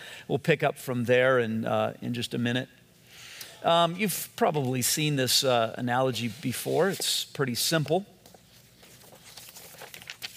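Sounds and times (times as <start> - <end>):
speech: 0.3 - 2.8, 3.6 - 8.1
white sheet of paper crinkling and rustling: 8.2 - 10.3.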